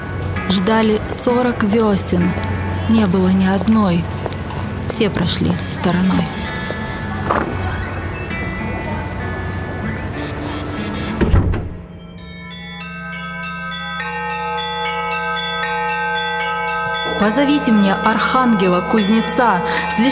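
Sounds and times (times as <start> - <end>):
church bells ringing: 0.0 - 10.8, 11.8 - 20.1
speech: 0.6 - 4.2, 4.9 - 6.4, 17.2 - 20.1.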